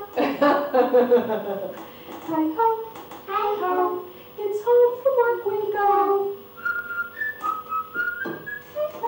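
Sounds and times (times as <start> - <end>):
laughter: 0.2 - 1.8
speech: 0.4 - 6.4
person whistling a lilting tune: 6.6 - 8.9.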